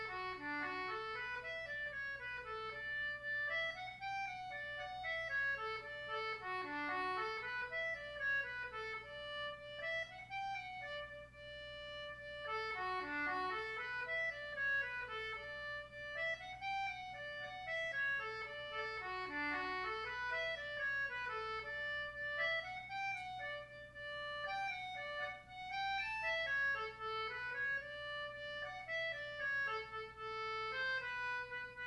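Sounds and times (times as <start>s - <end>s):
Celtic button box playing jigs: 0.0s - 31.8s.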